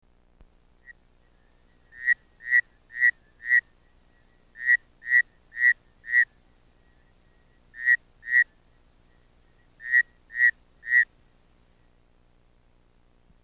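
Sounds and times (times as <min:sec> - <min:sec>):
Bushveld rain frog: 0:00.8 - 0:07.0, 0:07.7 - 0:08.6, 0:09.8 - 0:11.1.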